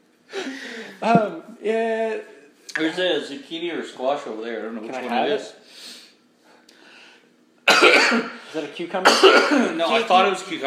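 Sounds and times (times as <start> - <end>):
speech: 1.0 - 5.9, 8.1 - 10.6
person coughing into a microphone: 7.7 - 8.4, 9.0 - 9.9.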